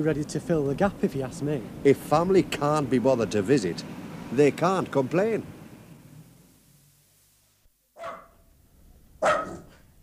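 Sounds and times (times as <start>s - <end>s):
speech: 0.0s - 5.6s
dog barking: 8.0s - 8.5s, 9.2s - 9.8s.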